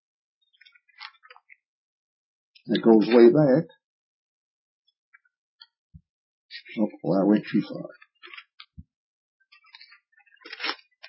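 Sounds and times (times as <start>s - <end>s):
thin Bible pages being flipped: 0.6s - 1.5s, 2.8s - 3.3s, 8.2s - 8.7s, 9.5s - 11.0s
speech: 2.6s - 3.8s, 6.8s - 8.0s.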